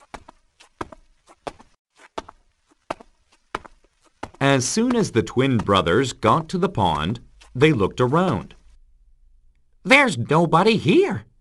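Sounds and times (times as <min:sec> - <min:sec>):
footsteps going down narrow stairs: 0:00.0 - 0:08.8
speech: 0:04.6 - 0:08.6, 0:10.0 - 0:11.3.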